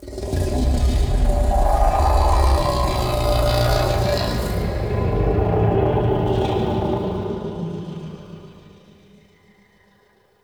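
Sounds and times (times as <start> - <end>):
growly vocal in E: 0.2 - 7.4.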